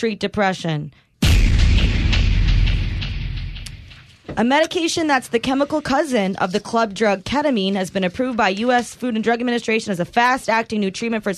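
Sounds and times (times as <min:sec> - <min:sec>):
speech: 0:00.0 - 0:01.5, 0:04.3 - 0:11.3
explosion sound effect with low rumble and crackling bursts: 0:01.2 - 0:04.2.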